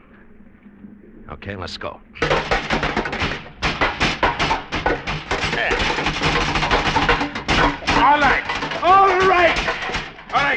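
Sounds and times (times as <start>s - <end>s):
speech: 1.3s - 2.8s, 8.0s - 10.5s
door rattling: 2.2s - 10.5s
shoe banging on a metal bulkhead: 2.2s - 10.5s.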